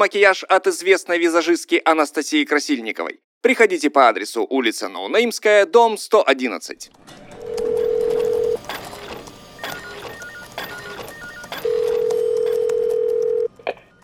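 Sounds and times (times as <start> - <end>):
speech: 0.0 - 7.3
telephone call connecting click: 7.1 - 14.0
telephone call to a company ringing with long steady electronic tones: 7.3 - 14.0.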